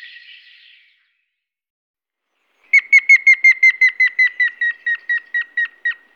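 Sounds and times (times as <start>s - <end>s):
grey-faced woodpecker: 2.7s - 6.1s.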